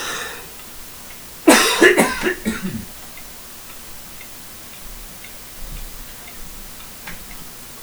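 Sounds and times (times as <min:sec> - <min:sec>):
person coughing into a microphone: 0:00.0 - 0:00.5, 0:01.5 - 0:02.9
faint hiss: 0:00.0 - 0:07.8.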